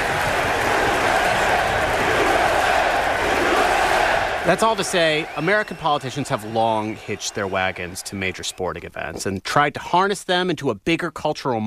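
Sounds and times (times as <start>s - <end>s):
stadium crowd roaring and cheering at a baseball game in New York: 0.0s - 9.1s
speech: 4.5s - 11.6s.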